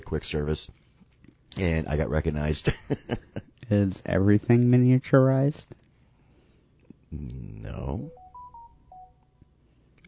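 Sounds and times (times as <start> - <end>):
low hum: 0.0 - 10.0
speech: 0.1 - 0.8, 1.6 - 5.8, 7.1 - 8.2
tablet electronic notification chime: 8.0 - 9.2.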